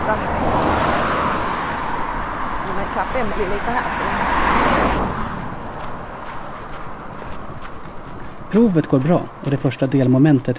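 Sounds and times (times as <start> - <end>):
car whooshing past on an open road: 0.0 - 7.6
light rhythmic footsteps: 0.0 - 10.5
steady road hum: 0.0 - 10.5
speech: 3.0 - 4.2, 8.5 - 10.5.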